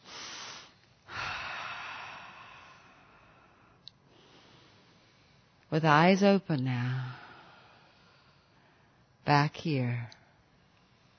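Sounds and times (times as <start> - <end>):
deep slow breathing in a guided relaxation: 0.0 - 5.5, 7.0 - 9.1
speech: 5.7 - 7.2, 9.3 - 10.2.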